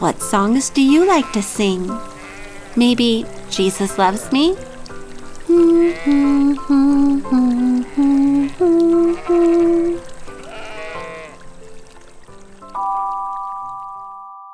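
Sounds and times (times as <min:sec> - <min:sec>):
speech: 0:00.0 - 0:02.2, 0:02.8 - 0:04.7, 0:05.5 - 0:10.0
sheep bleating: 0:02.1 - 0:02.8, 0:05.5 - 0:06.5, 0:07.6 - 0:11.4.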